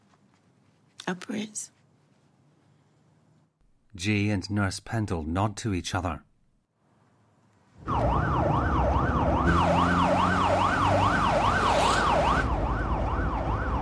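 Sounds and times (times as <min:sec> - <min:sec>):
speech: 0:01.1 - 0:01.8, 0:04.0 - 0:06.3
rumble of a moving vehicle: 0:07.8 - 0:13.8
siren of a speeding ambulance wailing: 0:07.8 - 0:13.8.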